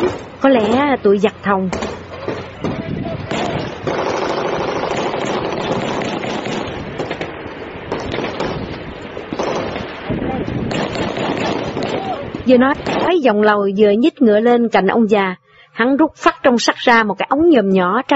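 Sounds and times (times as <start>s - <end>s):
speech: 0.4s - 1.8s, 12.5s - 18.1s
bursts of gunfire from across a border: 1.7s - 13.3s.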